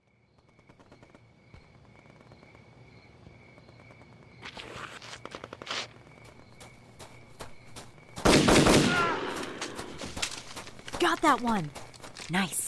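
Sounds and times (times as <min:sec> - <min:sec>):
gunshots: 0:08.2 - 0:10.4
speech: 0:11.1 - 0:12.6.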